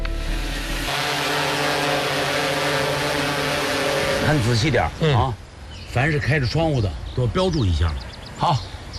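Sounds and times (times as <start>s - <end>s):
flying drone's small propellers buzzing while checking a residential building: 0.0s - 5.0s
speech: 4.3s - 8.7s.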